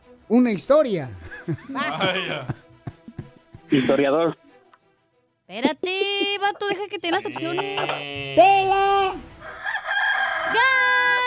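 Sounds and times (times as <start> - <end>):
speech: 0.2 - 2.6, 3.7 - 4.4, 5.5 - 9.3
laughter: 0.9 - 4.4, 5.6 - 9.1
rooster crowing: 9.4 - 11.1.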